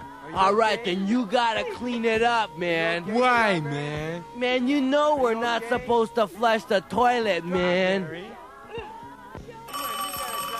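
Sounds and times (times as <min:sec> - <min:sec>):
speech: 0:00.3 - 0:08.4
telephone ringing: 0:09.5 - 0:10.5.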